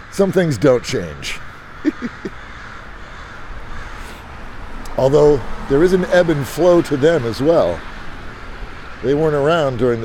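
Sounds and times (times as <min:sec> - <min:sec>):
crows cawing: 0:00.0 - 0:10.0
faint outdoor noise: 0:00.0 - 0:10.0
speech: 0:00.2 - 0:02.4, 0:05.0 - 0:07.9, 0:09.0 - 0:10.0
laughter: 0:01.8 - 0:02.4.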